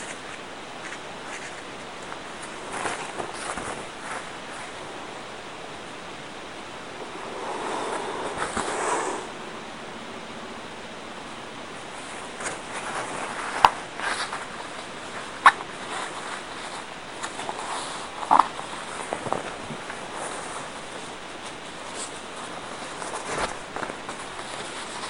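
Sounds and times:
napkin paper rustling and crinkling while folding roses: 0.0 - 4.9, 11.9 - 25.0
steady quiet hiss: 0.0 - 25.0.

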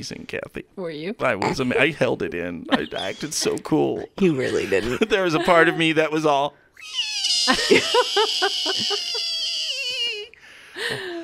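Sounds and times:
speech: 0.0 - 9.3, 10.8 - 11.1
voice mimicking a squeaky frog toy: 1.2 - 1.9, 2.7 - 4.3, 6.8 - 10.3
laughter: 2.7 - 6.2, 7.5 - 11.0.

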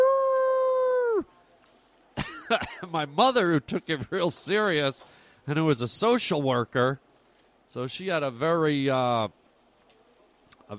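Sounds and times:
person imitating a werewolf howl: 0.0 - 1.2
speech: 2.5 - 7.0, 7.7 - 9.4.

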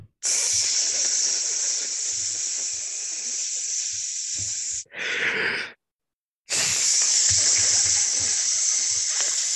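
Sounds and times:
grill started with a Duraflame and a spark sizzling: 0.3 - 4.8, 6.5 - 9.5.

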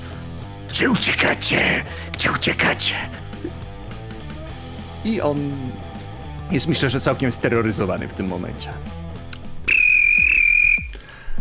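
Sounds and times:
speech: 0.7 - 3.6, 5.0 - 5.8, 6.5 - 9.0
referee's whistle blast at a basketball game: 9.7 - 11.0.

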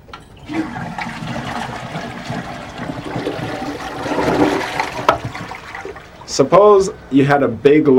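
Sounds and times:
toilet flushing: 0.1 - 6.4
speech: 6.4 - 7.9.

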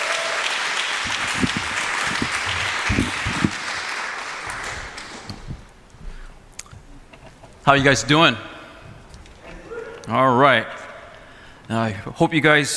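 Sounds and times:
crowd applause: 0.0 - 5.7
speech: 7.7 - 8.5, 10.1 - 10.8, 11.7 - 12.7.

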